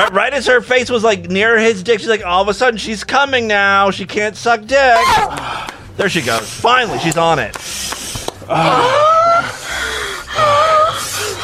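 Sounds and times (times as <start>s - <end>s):
speech: 0.0s - 9.2s
woman gasping loudly: 5.2s - 5.9s, 8.5s - 11.4s.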